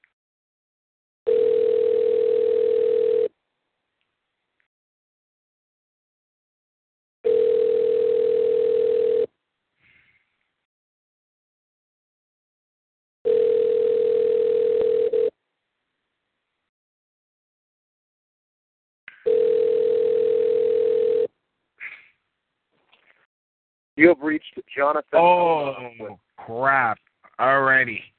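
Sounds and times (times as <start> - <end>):
electronic telephone line ringback burr through a handset: 1.3 - 3.3, 7.2 - 9.3, 13.3 - 15.3, 19.2 - 21.3
speech: 24.0 - 28.1.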